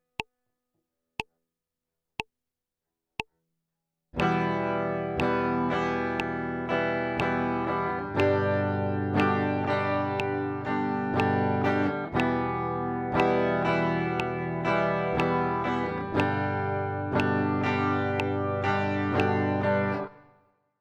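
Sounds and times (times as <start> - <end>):
guitar strumming E minor and G chords: 4.2 - 20.3.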